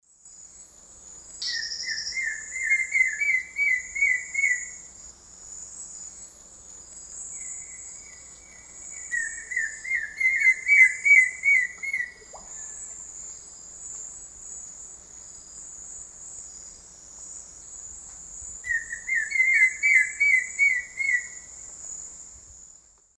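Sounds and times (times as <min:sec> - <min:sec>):
Myrmeciza melanoceps pair singing a duet in South American Eastern Lowlands: 0:01.4 - 0:04.9, 0:07.4 - 0:12.8, 0:18.7 - 0:21.5.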